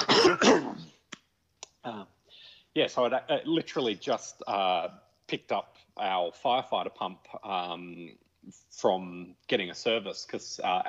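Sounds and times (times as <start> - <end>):
person clearing something caught in their throat: 0.0 - 1.0
speech: 2.8 - 10.8.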